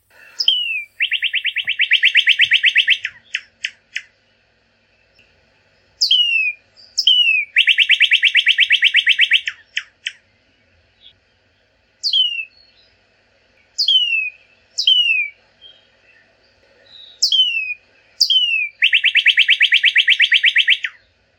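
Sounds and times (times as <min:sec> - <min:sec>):
Northern Cardinal: 0:00.4 - 0:04.1, 0:06.0 - 0:10.2, 0:12.0 - 0:12.9, 0:13.8 - 0:16.2, 0:16.9 - 0:21.0.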